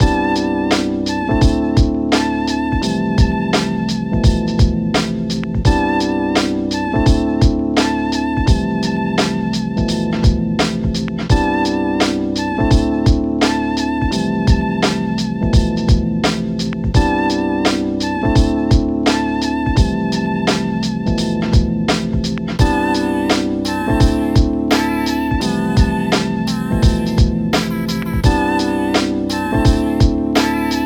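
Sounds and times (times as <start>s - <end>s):
boom bap beat at 80 BPM: 0.0s - 30.8s
vocals: 0.0s - 30.8s.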